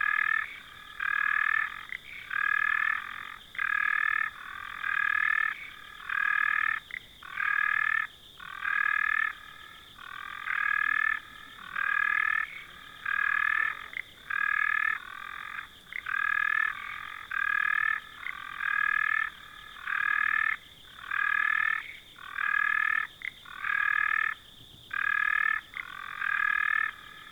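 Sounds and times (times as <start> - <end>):
frog calling in pulsed rattling croaks at an arid dam: 0.0 - 27.3.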